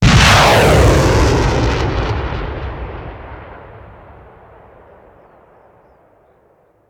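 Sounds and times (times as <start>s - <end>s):
missile launcher firing: 0.0s - 4.8s
explosive blast: 0.0s - 5.8s.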